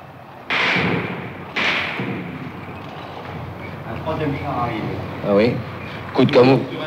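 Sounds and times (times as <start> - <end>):
tank machine-gun bullets striking a wall: 0.5 - 2.8
speech: 4.1 - 6.8.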